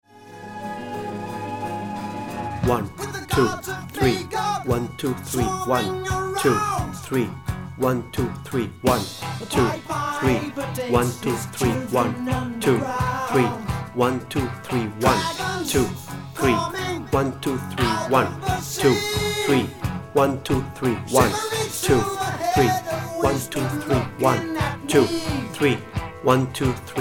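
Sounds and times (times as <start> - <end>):
organ solo: 0.2 - 26.9
person speaking voiceover: 2.6 - 26.9.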